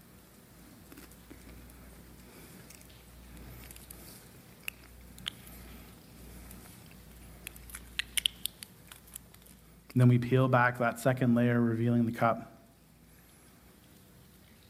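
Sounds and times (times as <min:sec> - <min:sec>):
low hum: 0:00.0 - 0:14.6
crisp chewing of a thin communion wafer: 0:00.7 - 0:09.6
speech: 0:10.0 - 0:12.5.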